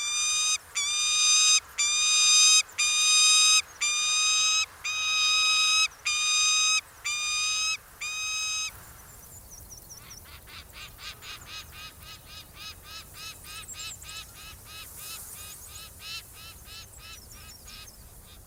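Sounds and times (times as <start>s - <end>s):
peregrine falcon wailing calls: 0.0s - 8.7s.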